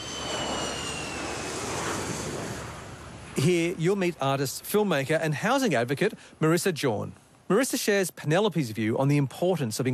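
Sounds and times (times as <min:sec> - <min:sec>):
jet airplane roaring overhead: 0:00.0 - 0:04.8
speech: 0:03.4 - 0:09.9.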